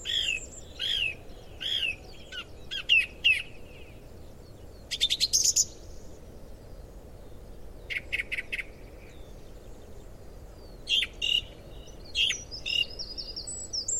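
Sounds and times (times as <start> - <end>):
song thrush singing: 0.0 - 13.9.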